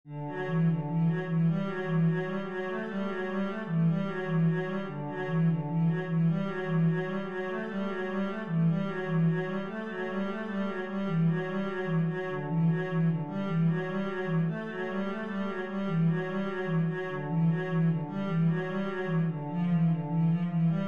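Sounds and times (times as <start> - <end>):
cello playing an etude: 0.1 - 20.8.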